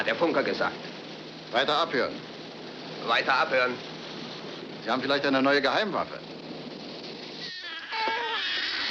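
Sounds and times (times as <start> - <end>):
speech: 0.0 - 2.3, 3.0 - 3.9, 4.8 - 6.4
babies crying heard as submarine noises: 7.4 - 8.8.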